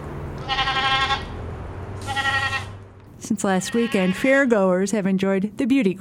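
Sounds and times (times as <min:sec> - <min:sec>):
low steady hum of barn noise: 0:00.0 - 0:05.9
prize goat bleating while being bathed in a breezy barn: 0:00.4 - 0:01.4, 0:02.0 - 0:02.8, 0:03.5 - 0:04.4
speech: 0:03.3 - 0:05.9.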